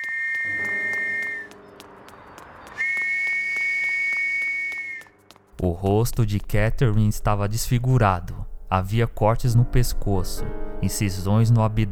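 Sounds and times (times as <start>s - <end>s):
night watchman blowing a shrill whistle while running: 0.0s - 1.7s, 2.7s - 5.2s
speech: 5.6s - 11.8s.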